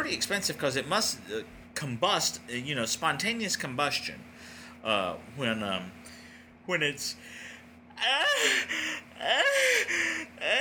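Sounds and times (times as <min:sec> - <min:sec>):
speech: 0:00.1 - 0:10.6
person yawning with gliding, moaning pitch: 0:07.9 - 0:10.6.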